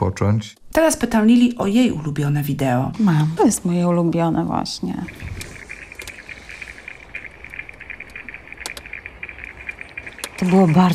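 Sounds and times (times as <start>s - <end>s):
speech: 0.0s - 5.4s, 10.4s - 10.9s
forest insects chirping and buzzing: 3.4s - 10.9s
sharp clicks and ticks: 4.2s - 10.9s.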